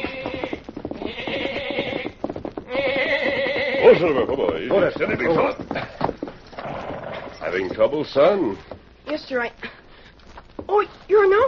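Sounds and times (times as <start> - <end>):
black lamb bleating: 0.0 - 4.1
pony whinnying: 0.0 - 7.7
pony hooves clip-clopping: 0.0 - 11.4
speech: 3.9 - 5.9, 7.5 - 9.7.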